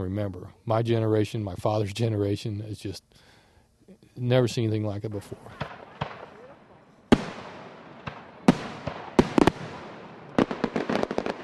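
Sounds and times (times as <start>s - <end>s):
speech: 0.0s - 3.3s, 3.9s - 5.8s
fireworks exploding: 5.5s - 11.4s.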